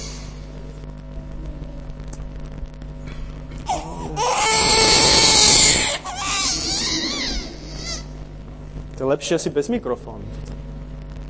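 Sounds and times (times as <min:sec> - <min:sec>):
low hum: 0:00.0 - 0:11.2
baby crying loudly in a reverberant room: 0:03.7 - 0:08.3
speech: 0:09.0 - 0:10.7.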